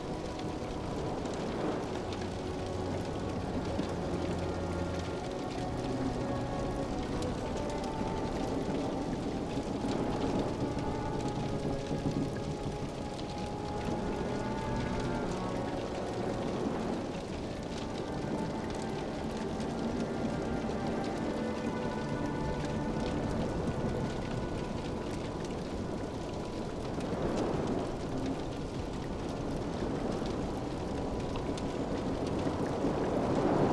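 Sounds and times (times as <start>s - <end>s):
soft sustained string notes: 0.0s - 28.3s
ocean surging outside the walls of a ship: 0.0s - 33.7s.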